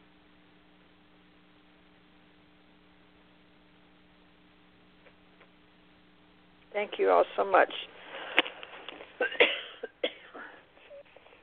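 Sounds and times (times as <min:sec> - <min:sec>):
speech: 0:06.8 - 0:08.0
person coughing harshly: 0:09.2 - 0:10.6.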